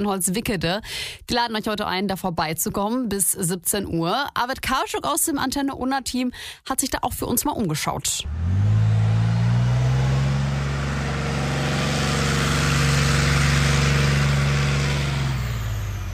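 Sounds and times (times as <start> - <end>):
speech: 0.0 - 8.8
diesel engine of an armoured recovery vehicle at a military training ground: 8.2 - 16.1.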